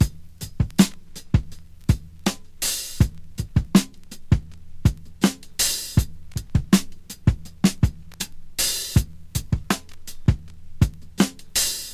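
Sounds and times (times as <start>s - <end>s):
drum beat in E key at 81 bpm: 0.0s - 11.9s.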